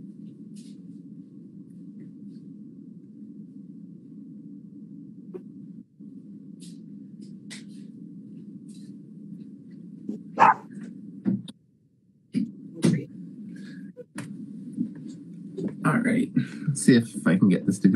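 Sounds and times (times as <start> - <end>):
low hum: 0.0 - 17.9
dog barking: 10.4 - 10.7
speech: 16.1 - 17.9.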